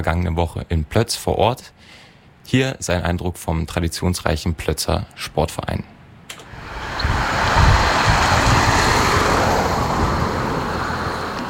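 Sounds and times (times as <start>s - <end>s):
speech: 0.0s - 6.0s
gusty wind on a district road on a sunny evening: 6.4s - 11.4s.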